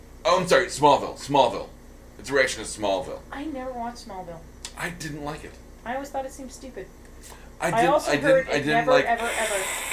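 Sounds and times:
speech: 0:00.3 - 0:09.9
person hissing at a cat: 0:09.2 - 0:09.9.

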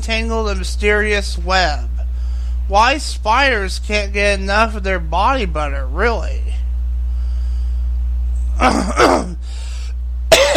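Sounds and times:
speech: 0:00.0 - 0:01.9, 0:02.7 - 0:06.6, 0:08.6 - 0:09.3
steady low hum: 0:00.0 - 0:10.5
throat clearing: 0:08.6 - 0:09.4, 0:10.3 - 0:10.5.

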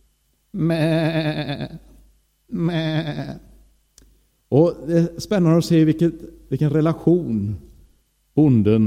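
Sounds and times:
speech: 0:00.6 - 0:01.7, 0:04.5 - 0:07.7, 0:08.4 - 0:08.8
sheep bleating: 0:00.6 - 0:01.9, 0:02.5 - 0:03.5.

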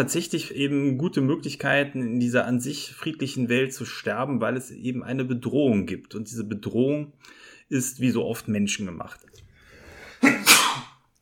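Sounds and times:
speech: 0:00.0 - 0:09.4
sneeze: 0:10.2 - 0:11.0.

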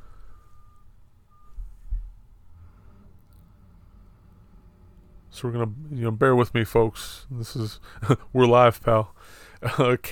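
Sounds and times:
salt truck reversing alarm beeps: 0:00.0 - 0:04.1
low engine rumble: 0:00.0 - 0:10.1
speech: 0:05.4 - 0:10.1.

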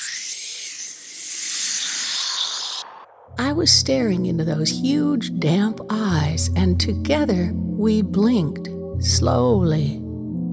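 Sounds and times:
steam hissing from hot dinner: 0:00.0 - 0:02.9
speech: 0:03.4 - 0:10.0.

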